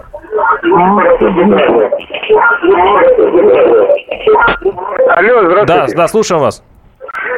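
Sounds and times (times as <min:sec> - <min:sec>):
radio broadcast voices playing through a phone line: 0:00.2 - 0:06.1
speech: 0:00.6 - 0:06.7.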